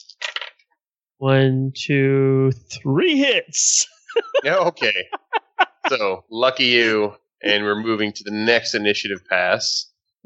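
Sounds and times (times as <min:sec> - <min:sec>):
dice clattering across a table during a tabletop game: 0:00.1 - 0:00.6
speech: 0:01.2 - 0:05.3, 0:05.9 - 0:10.2
laughter: 0:03.6 - 0:08.0.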